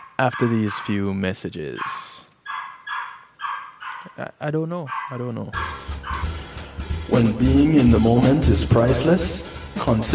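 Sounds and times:
dog barking: 0:00.0 - 0:01.0, 0:01.8 - 0:04.2, 0:04.8 - 0:05.3, 0:06.0 - 0:06.3
speech: 0:00.2 - 0:02.1, 0:04.2 - 0:05.8, 0:07.1 - 0:10.1.

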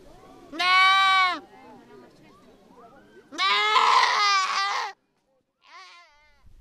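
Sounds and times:
tethered goats bleating in the grass: 0:00.5 - 0:01.4, 0:03.3 - 0:05.0, 0:05.6 - 0:06.4.

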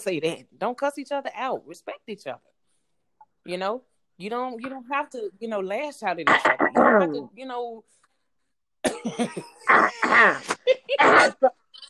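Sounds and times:
speech: 0:00.0 - 0:02.5, 0:03.4 - 0:08.0, 0:09.0 - 0:11.6
person coughing with something caught in the throat: 0:08.8 - 0:11.5.

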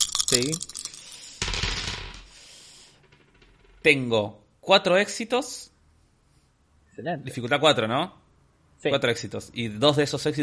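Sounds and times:
dice tumbling and rattling across a hard surface: 0:00.0 - 0:03.9
speech: 0:00.3 - 0:00.7, 0:03.8 - 0:05.7, 0:07.0 - 0:08.2, 0:08.8 - 0:10.4.

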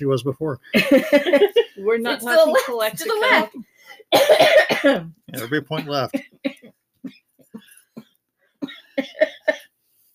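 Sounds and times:
speech: 0:00.0 - 0:06.3
person coughing: 0:04.1 - 0:09.7.

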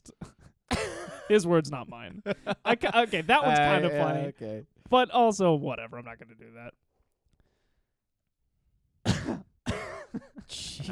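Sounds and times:
person coughing: 0:00.0 - 0:01.3, 0:09.0 - 0:10.9
speech: 0:01.3 - 0:06.8, 0:10.1 - 0:10.9.

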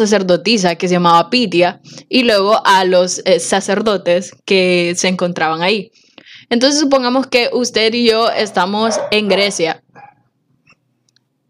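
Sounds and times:
speech: 0:00.0 - 0:10.1
dog vocalizing: 0:08.3 - 0:10.3.

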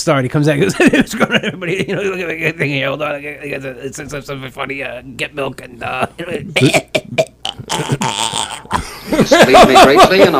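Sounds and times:
speech: 0:00.0 - 0:07.0, 0:09.2 - 0:10.3
laughter: 0:00.7 - 0:02.7, 0:06.0 - 0:10.3
person imitating someone coughing: 0:06.4 - 0:08.9.

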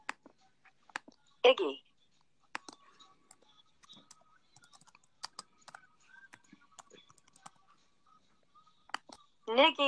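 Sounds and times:
speech: 0:01.4 - 0:01.9, 0:09.5 - 0:09.8
typing on a computer keyboard: 0:02.6 - 0:05.8, 0:06.4 - 0:07.5.

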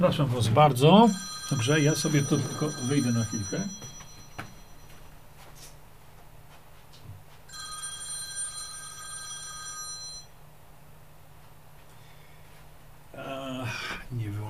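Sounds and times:
speech: 0:00.0 - 0:03.9
electronic telephone ringing: 0:01.0 - 0:05.0, 0:07.5 - 0:10.4.

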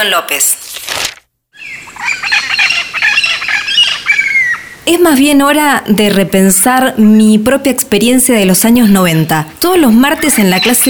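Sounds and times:
speech: 0:00.0 - 0:01.1, 0:04.9 - 0:10.8
flock of parrots squawking overhead in eucalyptus trees of a park: 0:01.6 - 0:04.8, 0:10.1 - 0:10.8.

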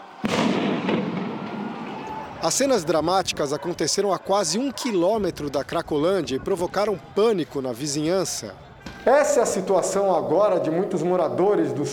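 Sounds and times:
loud firework blast during street unrest: 0:00.2 - 0:02.0
speech: 0:02.4 - 0:11.9.

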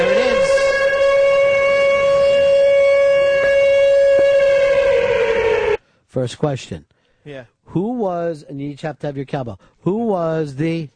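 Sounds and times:
siren wailing: 0:00.0 - 0:05.8
speech: 0:06.2 - 0:10.9.

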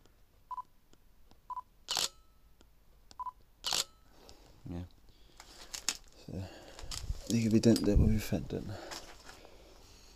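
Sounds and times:
faint hiss: 0:00.0 - 0:10.1
loud camera shutter clicks: 0:01.9 - 0:02.2, 0:03.6 - 0:04.0
speech: 0:07.3 - 0:08.9.

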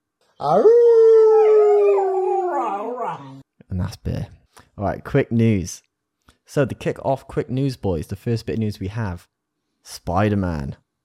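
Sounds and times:
speech: 0:00.4 - 0:01.0, 0:03.1 - 0:05.9, 0:06.5 - 0:10.8
person imitating a dog's howl: 0:00.4 - 0:03.4.

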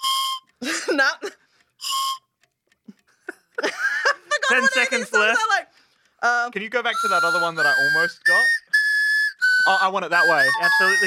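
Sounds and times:
faint clicks: 0:00.0 - 0:11.0
speech: 0:01.0 - 0:02.0, 0:04.5 - 0:08.6, 0:09.7 - 0:11.0
person whistling short steady notes: 0:01.8 - 0:02.3, 0:06.8 - 0:11.0
laughter: 0:03.2 - 0:05.4.

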